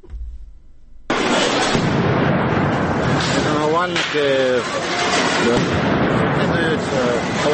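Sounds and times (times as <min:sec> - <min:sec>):
police grenade exploding among protesters on Instytutska Street in Kyiv Ukraine: 0:01.1 - 0:07.5
harsh roar of chaotic crowd noise of protesters: 0:02.4 - 0:07.5
speech: 0:03.8 - 0:07.5.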